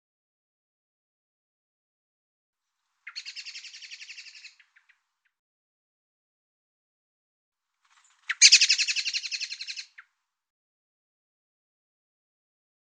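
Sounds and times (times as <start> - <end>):
buzzy rapidly pulsed bird calls: 3.1 - 5.0, 8.0 - 10.0.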